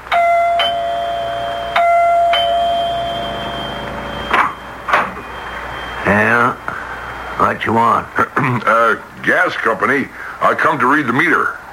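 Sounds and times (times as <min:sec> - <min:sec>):
two-tone doorbell chime: 0:00.1 - 0:06.5
speech: 0:07.6 - 0:11.7.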